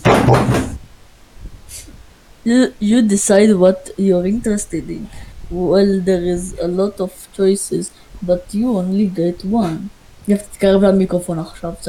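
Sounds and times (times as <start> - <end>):
door slamming shut: 0.0 - 0.8
faint hiss: 0.8 - 11.8
speech: 2.4 - 11.8.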